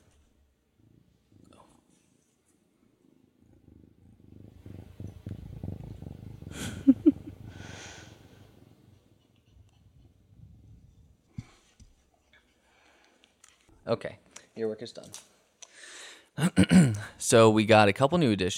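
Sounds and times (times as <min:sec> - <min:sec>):
kitten purring against a microphone: 0:02.8 - 0:11.6
speech: 0:13.9 - 0:15.4, 0:16.4 - 0:18.5.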